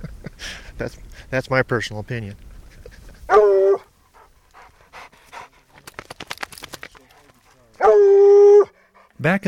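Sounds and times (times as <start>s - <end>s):
speech: 0.8s - 2.5s, 9.2s - 9.4s
hunting hounds baying while searching for a lion in the Black Hills: 3.3s - 5.5s, 7.8s - 9.1s
hunting hounds panting and snuffling: 4.0s - 7.8s, 8.7s - 9.2s.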